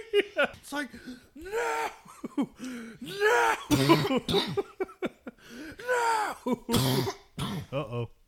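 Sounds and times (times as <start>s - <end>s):
speech: 0.1s - 4.8s, 6.0s - 7.2s
person coughing: 3.1s - 4.9s, 5.8s - 8.0s.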